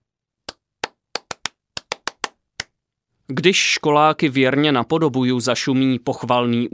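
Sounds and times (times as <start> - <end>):
rhythmic stadium-style hand clapping by a school choir in a church: 0.5 - 2.8
speech: 3.3 - 6.7.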